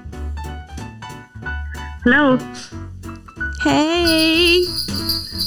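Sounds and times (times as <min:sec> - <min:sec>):
speech: 0:02.1 - 0:02.8, 0:03.7 - 0:04.7
phone call ringback tone: 0:04.1 - 0:05.4
rhythmic music: 0:04.1 - 0:05.4.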